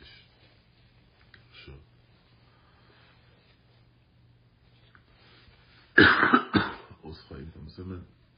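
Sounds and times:
ill person coughing: 6.0s - 7.0s.

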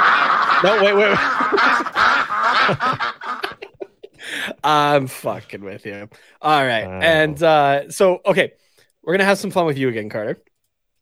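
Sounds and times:
duck quacking sound effect: 0.0s - 3.5s
laughter: 0.0s - 5.6s, 6.8s - 7.6s
speech: 0.6s - 3.2s, 4.6s - 10.5s.

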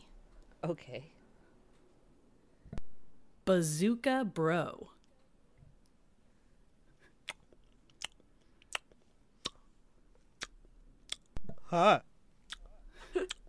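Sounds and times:
speech: 0.6s - 1.2s, 3.5s - 5.0s, 11.7s - 12.1s
exaggerated wet gum chewing: 7.2s - 9.7s, 10.4s - 11.4s.

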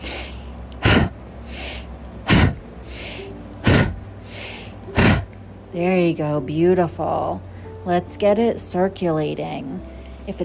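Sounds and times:
forceful energizing breathwork inhaling through nose and exhaling through mouth: 0.0s - 5.4s
speech: 5.8s - 10.4s.

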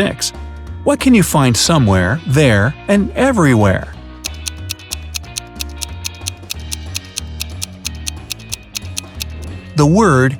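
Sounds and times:
speech: 0.0s - 4.0s, 9.8s - 10.3s
clock ticking: 4.3s - 9.5s.

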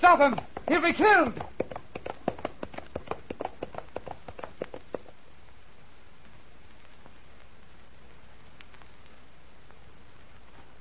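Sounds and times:
horse galloping off into the flames of a burning castle: 0.0s - 5.3s
hiss: 0.0s - 10.7s
speech: 0.1s - 1.5s.

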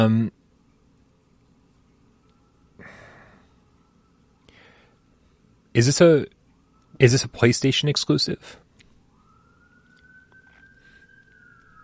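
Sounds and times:
speech: 0.0s - 0.4s, 5.8s - 6.4s, 7.0s - 8.6s
emergency vehicle siren wailing outside: 2.1s - 5.2s, 5.8s - 11.8s.

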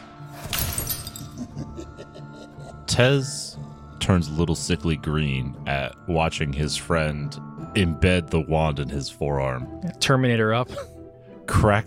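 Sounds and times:
glass decanter shattering: 0.3s - 1.4s
small glass fragments tinkling: 0.4s - 1.4s
laughter: 1.2s - 3.3s
speech: 2.9s - 3.4s, 4.1s - 10.9s, 11.5s - 11.8s.

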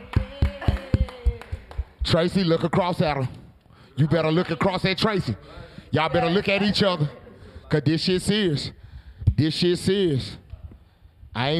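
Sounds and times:
team clapping hands in a steady rhythm: 0.0s - 2.9s
speech: 2.0s - 3.4s, 4.0s - 10.4s, 11.4s - 11.5s.

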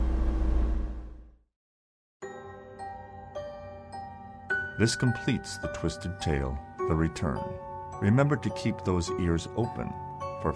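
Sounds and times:
car engine starting and backing out: 0.0s - 1.4s
speech: 4.8s - 10.5s.

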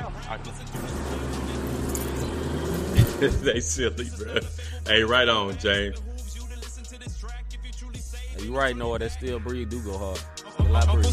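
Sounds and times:
voices: 0.0s - 5.9s
speech: 0.3s - 1.4s, 3.0s - 6.3s, 8.4s - 11.1s
Maserati engine rumbling low and steady: 0.8s - 3.7s
laughter: 0.8s - 5.2s.

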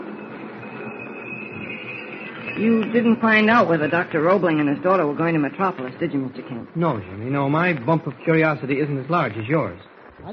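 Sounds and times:
thin high train brake squeal: 0.0s - 4.9s
train rumbling while entering a station: 0.0s - 10.1s
speech: 2.6s - 10.3s.

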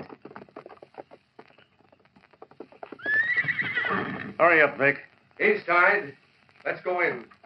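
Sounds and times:
horse hooves clip-clopping on hard ground: 0.0s - 7.4s
horse letting out a loud quavering whinny: 2.4s - 4.4s
speech: 4.4s - 7.4s.

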